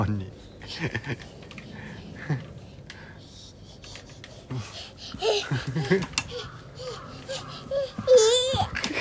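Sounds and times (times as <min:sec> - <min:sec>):
speech: 0:00.0 - 0:01.4, 0:02.3 - 0:02.5, 0:05.6 - 0:06.2
babbling voices: 0:03.8 - 0:08.9
two babies crying: 0:05.0 - 0:08.9
laughter: 0:05.3 - 0:06.2.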